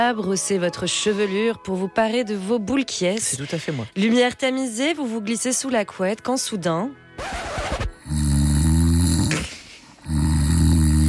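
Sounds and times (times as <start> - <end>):
speech: 0.0 - 7.8
person snoring: 8.0 - 11.0.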